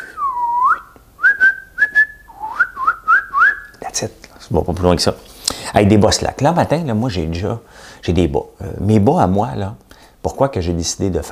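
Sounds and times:
person whistling softly a wavering tune of sliding notes: 0.0 - 3.8
speech: 4.0 - 11.2.

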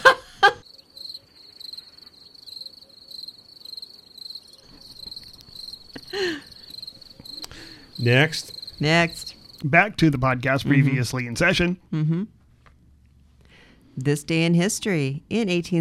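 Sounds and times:
crickets chirping in a rapid pulsing trill: 0.0 - 10.4
speech: 8.0 - 12.4, 14.0 - 15.7.

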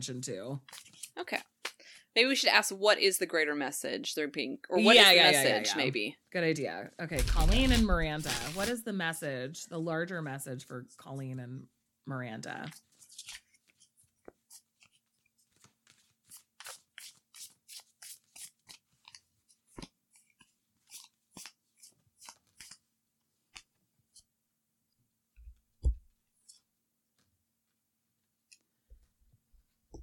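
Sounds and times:
speech: 0.0 - 1.5, 2.1 - 12.9
tarot cards being shuffled and drawn from a deck: 0.6 - 1.8, 7.2 - 8.8, 12.6 - 22.8, 23.5 - 24.3, 25.8 - 26.7.

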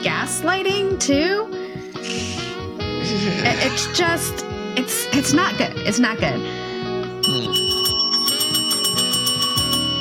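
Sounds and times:
speech: 0.0 - 1.5, 3.1 - 7.6
low melodic accompaniment: 0.0 - 9.9
bell ringing as a segment cue: 7.2 - 9.9.

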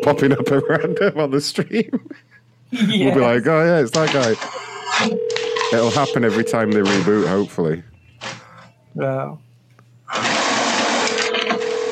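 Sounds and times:
speech: 0.0 - 7.9, 9.0 - 9.4
printer running with whirring and clattering: 3.9 - 5.2, 5.9 - 7.6, 10.1 - 11.9.

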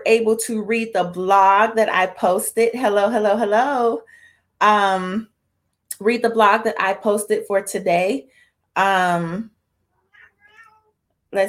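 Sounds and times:
speech: 0.0 - 5.3, 5.9 - 9.5
cat meowing behind a closed door: 10.0 - 11.0.

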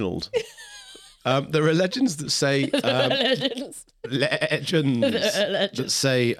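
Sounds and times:
speech: 0.0 - 0.6, 1.2 - 6.3
laughter: 0.4 - 6.0
human voice imitating a goat's bleating: 4.1 - 5.7.

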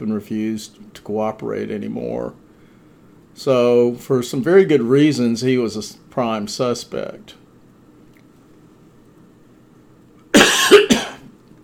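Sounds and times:
speech: 0.0 - 2.4, 3.4 - 7.4
person coughing: 10.3 - 11.4.

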